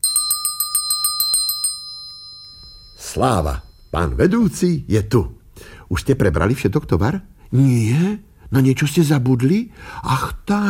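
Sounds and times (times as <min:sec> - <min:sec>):
small hand bell ringing: 0:00.0 - 0:04.2
speech: 0:03.1 - 0:10.6.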